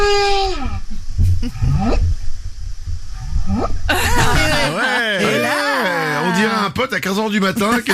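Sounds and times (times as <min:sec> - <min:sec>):
male whale courtship call: 0:00.0 - 0:00.8
low rumbling background: 0:00.0 - 0:04.7
speech: 0:01.4 - 0:02.2, 0:06.9 - 0:07.9
laughter: 0:03.9 - 0:06.7, 0:07.6 - 0:07.9.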